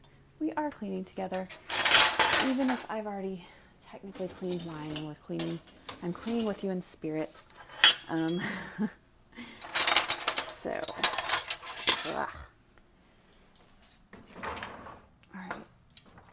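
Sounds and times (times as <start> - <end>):
speech: 0.6 - 1.7, 2.4 - 7.5, 8.1 - 9.5, 10.6 - 11.1
metal silverware clinking as it is handled: 1.3 - 2.9, 4.1 - 6.6, 7.6 - 8.7, 9.6 - 12.3.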